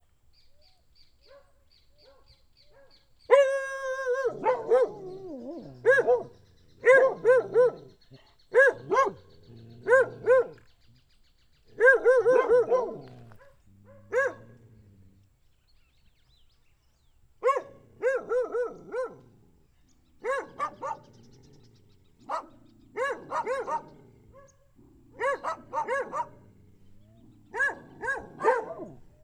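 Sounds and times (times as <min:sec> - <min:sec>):
distant birds: 0:00.3 - 0:29.2
dogs barking close by: 0:01.3 - 0:10.7, 0:11.7 - 0:14.7, 0:17.4 - 0:19.3, 0:20.2 - 0:29.2.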